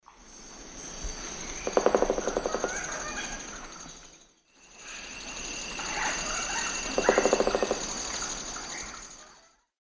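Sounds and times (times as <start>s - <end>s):
Dryocopus lineatus drumming: 1.6s - 3.4s, 6.4s - 8.3s.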